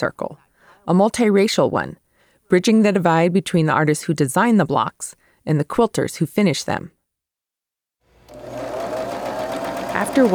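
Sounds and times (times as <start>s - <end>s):
speech: 0.0s - 7.0s, 10.0s - 10.3s
sewing machine whirring at a quilting sewing day in a fabric shop: 8.1s - 10.3s.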